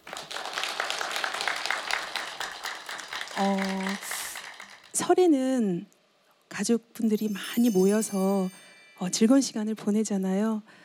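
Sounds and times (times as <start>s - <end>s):
audience clapping to welcome a performer: 0.0s - 5.0s
speech: 3.4s - 4.1s, 5.0s - 6.0s, 6.6s - 10.8s
short sustained musical tone: 7.2s - 9.7s.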